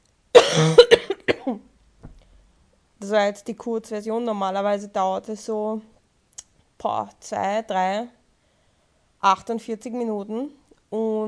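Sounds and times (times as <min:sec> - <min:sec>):
person coughing: 0:00.4 - 0:01.6
speech: 0:03.0 - 0:05.9, 0:06.8 - 0:08.2, 0:09.2 - 0:11.2.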